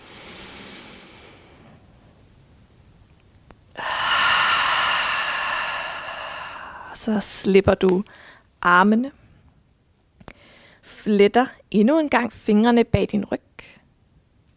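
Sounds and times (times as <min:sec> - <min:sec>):
slow deep breathing during a yoga exercise: 0:00.0 - 0:01.8, 0:03.8 - 0:07.1
speech: 0:07.0 - 0:09.2, 0:11.0 - 0:13.7.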